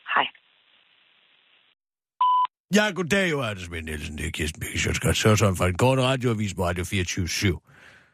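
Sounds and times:
speech: 0.2s - 0.4s, 2.7s - 7.9s
electronic voicemail beep before recording a message: 2.2s - 2.5s.

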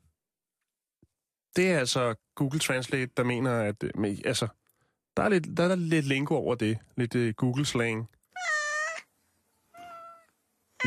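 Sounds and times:
speech: 1.6s - 4.6s, 5.2s - 8.2s
cat meowing: 8.3s - 9.1s, 9.7s - 10.8s.

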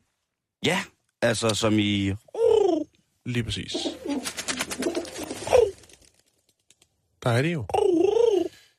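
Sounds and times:
speech: 0.6s - 2.2s, 3.2s - 4.4s, 7.2s - 8.0s
pigeon cooing: 2.4s - 2.9s, 3.7s - 5.9s, 7.7s - 8.6s.

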